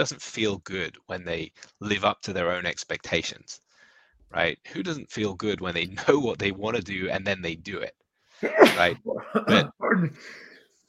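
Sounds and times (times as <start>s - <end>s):
speech: 0.0s - 3.6s, 4.3s - 10.5s
sharp sneeze: 8.4s - 9.7s.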